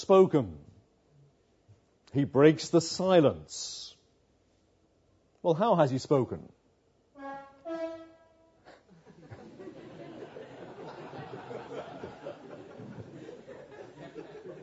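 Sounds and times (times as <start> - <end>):
speech: 0.0 - 0.6, 2.1 - 3.8, 5.4 - 6.6
train horn blasts: 7.2 - 8.6
laughter: 8.9 - 14.6.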